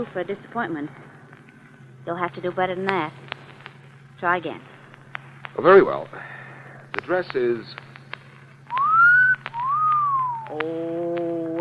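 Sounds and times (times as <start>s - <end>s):
speech: 0.0s - 1.2s, 2.0s - 3.2s, 4.2s - 4.7s, 5.6s - 6.4s, 7.1s - 7.8s, 10.5s - 11.5s
low steady hum: 0.0s - 11.5s
wolf whistle of admiration: 8.7s - 10.6s.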